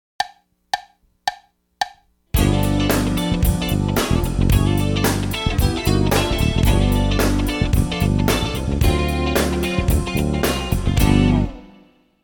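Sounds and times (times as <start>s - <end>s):
drums: 2.3s - 11.6s
combo band playing: 2.4s - 11.8s.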